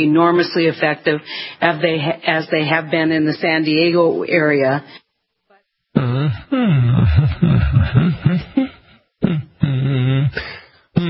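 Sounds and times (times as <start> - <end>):
speech: 0.0 - 5.0, 6.0 - 8.5
person humming a melody on the radio: 6.0 - 11.0.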